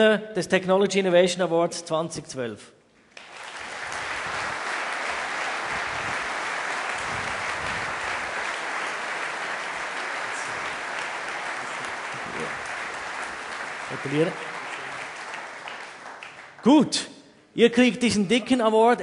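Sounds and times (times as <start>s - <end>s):
speech: 0.0s - 2.8s, 14.0s - 14.5s, 16.6s - 19.0s
large audience applauding at a technology innovation award ceremony: 3.0s - 17.0s.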